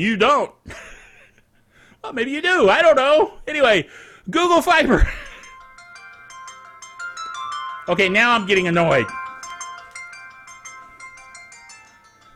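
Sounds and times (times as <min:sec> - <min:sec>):
speech: 0:00.0 - 0:00.9, 0:02.0 - 0:05.3, 0:07.9 - 0:09.2
phone ringing with a repeating electronic melody: 0:05.0 - 0:12.3.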